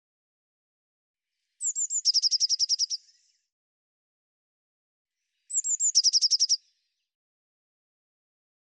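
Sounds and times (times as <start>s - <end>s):
Eurasian blue tit singing: 1.6s - 3.2s, 5.5s - 6.6s.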